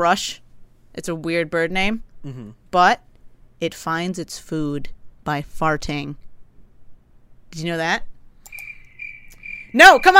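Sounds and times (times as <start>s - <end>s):
speech: 0.0s - 0.4s, 1.0s - 6.2s, 7.5s - 8.1s, 9.7s - 10.1s
crickets chirping in a faint high-pitched trill: 8.5s - 10.1s.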